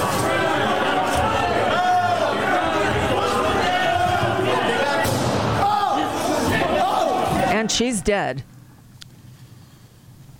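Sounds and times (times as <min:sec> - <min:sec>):
crowd shouting and clamoring: 0:00.0 - 0:08.0
speech: 0:07.8 - 0:08.5.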